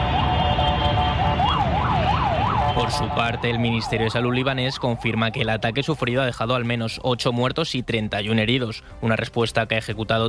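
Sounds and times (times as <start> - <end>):
air raid alarm sirens wailing during bombardment: 0.0 - 5.5
speech: 2.8 - 10.2.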